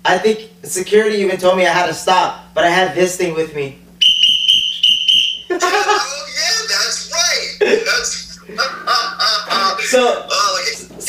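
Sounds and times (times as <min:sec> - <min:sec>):
speech: 0:00.1 - 0:03.8, 0:09.9 - 0:10.4
shrill whistle blown hard: 0:04.0 - 0:05.5
laughter: 0:05.5 - 0:06.6, 0:07.5 - 0:10.0.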